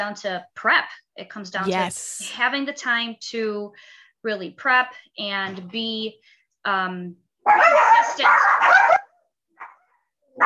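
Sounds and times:
speech: 0:00.0 - 0:09.0
dogs barking: 0:07.5 - 0:09.8.

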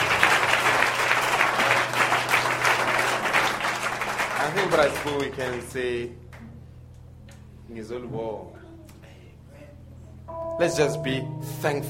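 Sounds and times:
audience applauding: 0:00.0 - 0:06.1
speech: 0:04.6 - 0:06.2, 0:07.7 - 0:08.6, 0:10.6 - 0:11.8.

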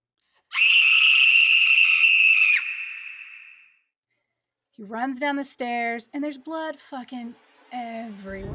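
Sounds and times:
woman letting out a long piercing scream: 0:00.5 - 0:03.5
speech: 0:04.8 - 0:08.5.

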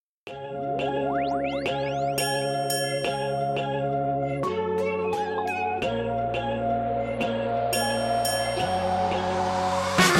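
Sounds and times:
upbeat K-pop song intro: 0:00.3 - 0:10.1
chiming bell-like tones: 0:01.1 - 0:03.9, 0:07.7 - 0:09.6.

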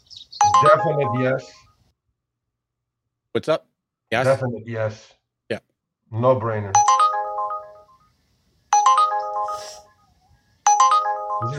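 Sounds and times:
Uber ride-hailing app ride request ping: 0:00.4 - 0:01.5, 0:06.8 - 0:08.0, 0:08.8 - 0:09.9, 0:10.7 - 0:11.5
speech: 0:00.5 - 0:01.6, 0:03.4 - 0:07.0.

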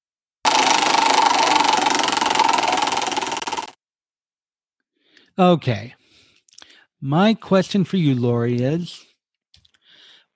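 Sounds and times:
prize wheel spinning with ratcheting clicks in a question game: 0:00.5 - 0:03.8
speech: 0:05.4 - 0:06.0, 0:07.0 - 0:09.1.

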